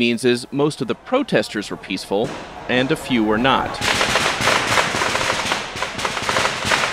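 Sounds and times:
speech: 0.0s - 4.0s
fireworks exploding at the federal courthouse in Portland: 2.2s - 6.9s.

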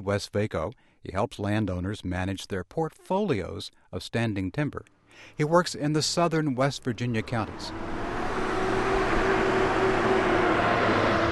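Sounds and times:
speech: 0.0s - 7.9s
engine drone inside a moving truck: 5.2s - 11.3s
faint whine inside a moving truck: 5.2s - 11.3s
road rumble from inside a moving truck: 5.2s - 11.3s.

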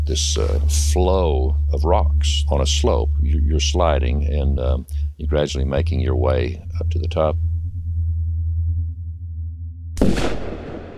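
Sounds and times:
low hum: 0.0s - 10.9s
speech: 0.1s - 7.5s
single gunshot fired from across a canyon near an old mine: 10.0s - 10.9s.

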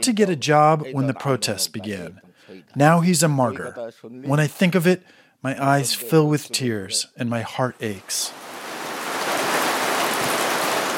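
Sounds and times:
speech: 0.0s - 8.5s
heavy monsoon rain pouring down: 8.0s - 10.9s.

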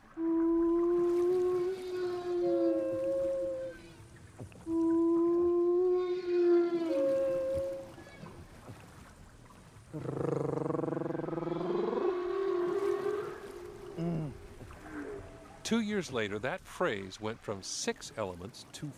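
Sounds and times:
real whale call with a deep gliding moan: 0.0s - 8.9s, 9.9s - 15.7s
woman singing an imitation of whale song: 0.2s - 4.0s, 4.7s - 8.0s, 10.0s - 14.4s
speech: 15.7s - 18.9s.

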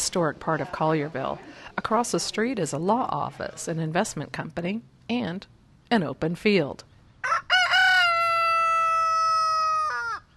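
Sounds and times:
speech: 0.1s - 7.5s
rooster crowing: 7.2s - 10.3s.

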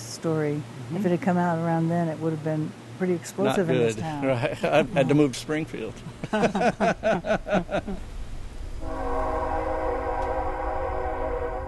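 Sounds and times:
speech: 0.2s - 8.1s
laughter: 3.8s - 5.3s, 6.0s - 8.0s
train rumbling past: 6.8s - 11.6s
sustained multi-tone train horn blast: 8.8s - 11.6s.

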